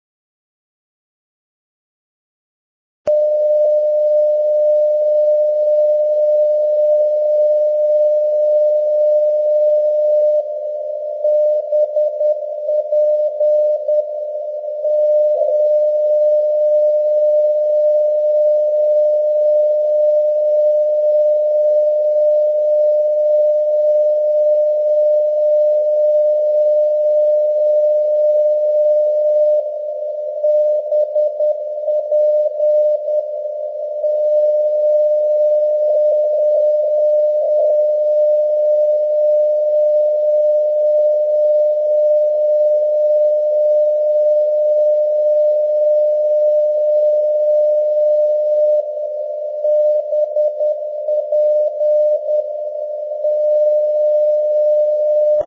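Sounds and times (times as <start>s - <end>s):
Bastia non-directional radio beacon signal: 3.1s - 55.4s.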